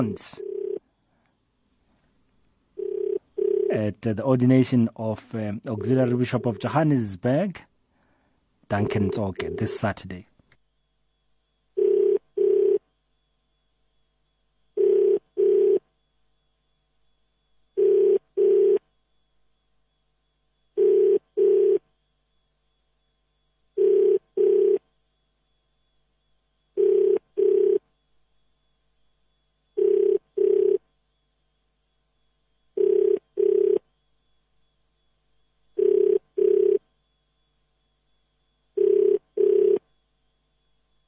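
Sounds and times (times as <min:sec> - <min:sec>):
speech: 0:00.0 - 0:00.5, 0:03.7 - 0:07.7, 0:08.7 - 0:10.3
double-burst ringback tone of an outgoing phone call: 0:00.0 - 0:00.9, 0:02.8 - 0:03.9, 0:05.6 - 0:06.8, 0:08.7 - 0:10.0, 0:11.7 - 0:13.0, 0:14.7 - 0:16.0, 0:17.7 - 0:19.0, 0:20.8 - 0:22.0, 0:23.7 - 0:25.0, 0:26.7 - 0:28.0, 0:29.7 - 0:31.0, 0:32.7 - 0:34.0, 0:35.8 - 0:37.0, 0:38.7 - 0:40.0.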